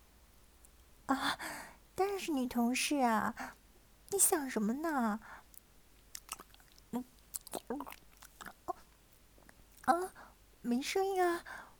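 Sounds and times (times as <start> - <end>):
speech: 1.1 - 5.4, 6.9 - 8.0, 9.9 - 11.6
someone biting and chewing an ice-cream bar: 5.6 - 9.9.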